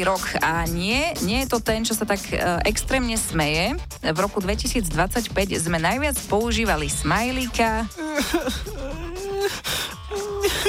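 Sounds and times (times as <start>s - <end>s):
speech: 0.0s - 9.0s
voice imitating sobbing with whimpering wails: 7.8s - 10.6s
sharp gasping breaths: 8.5s - 10.6s.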